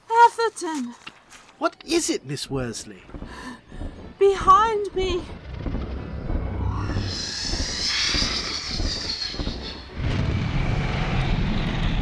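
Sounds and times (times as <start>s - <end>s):
speech: 0.4s - 3.5s, 4.2s - 5.5s
dragon's rhythmic whooshing wingbeats: 5.1s - 11.0s
dragon roaring: 5.5s - 11.9s.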